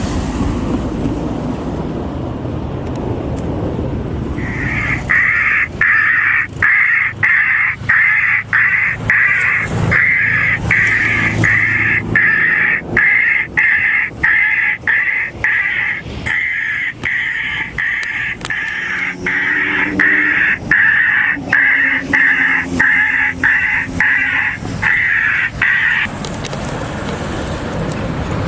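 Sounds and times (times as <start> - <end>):
faint outdoor wind: 0.0 - 28.4
jackdaw distress calls from the speaker of a bioacoustic bird repeller: 4.4 - 26.1.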